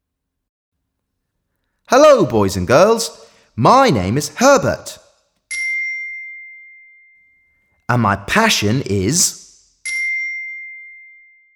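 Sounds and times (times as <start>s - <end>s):
speech: 1.9s - 5.0s, 7.9s - 9.4s
bright bell ding marking a missing word in a listening exercise: 5.5s - 7.9s, 9.8s - 11.5s.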